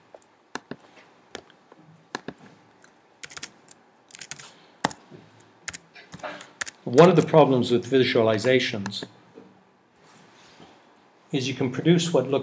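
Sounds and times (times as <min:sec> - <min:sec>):
typing on a computer keyboard: 0:03.2 - 0:03.5, 0:04.1 - 0:05.0, 0:05.7 - 0:07.3
speech: 0:06.9 - 0:09.2, 0:11.3 - 0:12.4.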